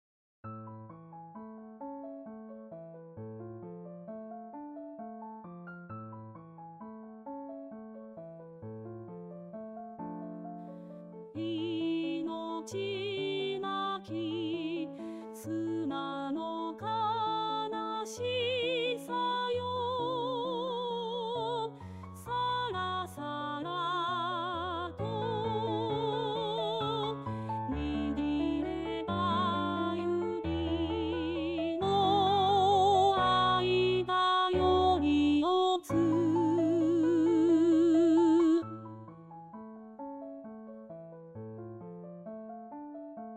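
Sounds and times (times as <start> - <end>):
alto voice singing: 11.4 - 21.7, 22.4 - 39.0.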